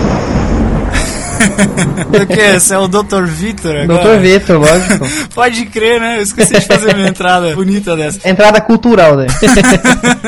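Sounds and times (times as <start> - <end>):
thunder crackling bursts: 0.0 - 5.3
thunder rumble: 0.0 - 6.8
laughter: 0.9 - 3.1, 3.9 - 8.2, 9.3 - 10.2
speech: 1.5 - 10.2.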